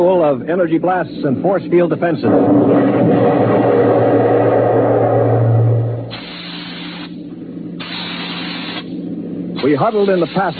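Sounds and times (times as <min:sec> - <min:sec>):
speech: 0:00.0 - 0:04.4, 0:09.6 - 0:10.5
deep mechanical hum: 0:00.0 - 0:10.5
steam hissing through a starship's steering tubes while maneuvering: 0:06.1 - 0:07.2, 0:07.8 - 0:08.9, 0:09.6 - 0:10.5.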